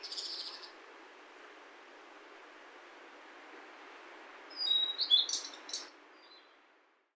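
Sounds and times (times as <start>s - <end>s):
bird calling: 0.0s - 0.7s, 4.5s - 5.9s
quiet background hiss: 0.0s - 7.1s.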